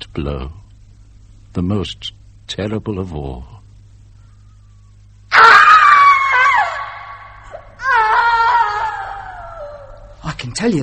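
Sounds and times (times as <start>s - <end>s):
speech: 0.2s - 0.6s, 1.5s - 3.6s, 10.6s - 10.8s
woman screaming in anguish: 5.3s - 10.1s.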